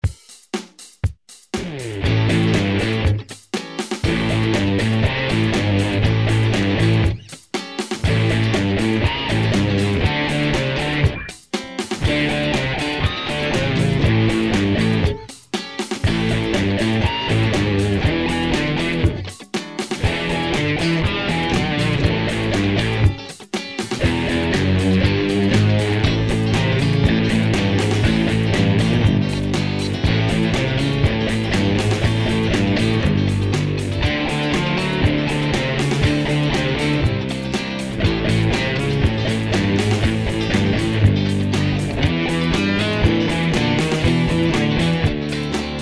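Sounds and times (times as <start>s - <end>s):
basic band playing: 1.6s - 45.8s.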